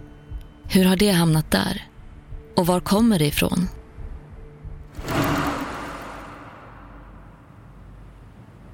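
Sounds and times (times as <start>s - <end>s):
speech: 0.7s - 1.9s, 2.6s - 3.8s
wheelchair whooshing past at full speed: 4.9s - 7.2s.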